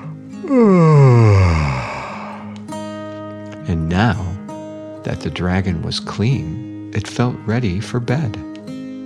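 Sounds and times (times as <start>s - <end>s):
person giving a long drawn-out vocal yawn: 0.0s - 2.6s
speech: 0.4s - 0.9s, 3.7s - 4.3s, 5.1s - 8.5s.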